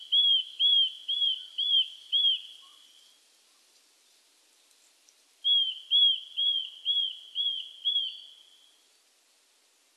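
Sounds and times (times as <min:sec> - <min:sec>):
Eurasian nuthatch calling with loud slurred whistles: 0:00.0 - 0:02.9, 0:05.4 - 0:08.8
faint background hiss: 0:00.0 - 0:09.9.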